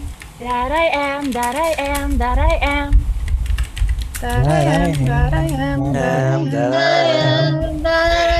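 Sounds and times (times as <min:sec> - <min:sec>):
speech: 0:00.4 - 0:03.0, 0:04.2 - 0:08.3
computer keyboard typing: 0:00.9 - 0:02.1, 0:03.3 - 0:05.6
person humming a wavering sustained melody: 0:04.2 - 0:08.3.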